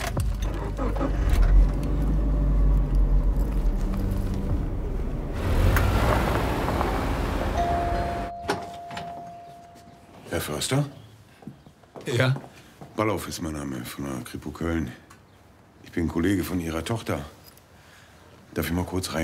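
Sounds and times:
car engine rumbling as car drives off: 0:00.5 - 0:08.3
speech: 0:10.4 - 0:11.0, 0:12.0 - 0:15.0, 0:15.9 - 0:17.4, 0:18.6 - 0:19.2.

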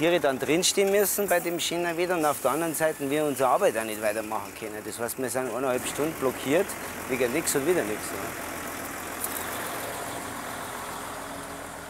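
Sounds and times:
speech: 0:00.0 - 0:08.5
truck loaded with playground sand idling: 0:00.0 - 0:11.8.

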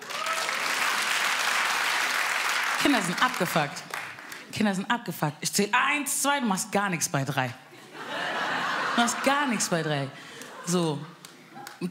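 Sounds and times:
audience applause: 0:00.0 - 0:04.4
speech: 0:02.8 - 0:03.9, 0:04.5 - 0:08.1, 0:09.0 - 0:11.2
laughter: 0:07.8 - 0:11.2.

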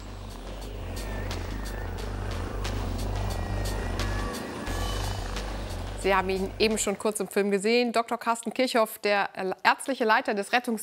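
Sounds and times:
rescue helicopter turbine roar: 0:00.0 - 0:06.8
rescue helicopter rotor beating during lift-off: 0:00.0 - 0:07.0
speech: 0:06.0 - 0:10.8.

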